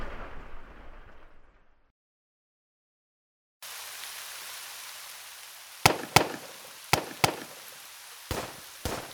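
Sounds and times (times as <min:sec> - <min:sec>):
steady hiss: 0:03.6 - 0:09.1
pistol gunshots: 0:05.8 - 0:09.1.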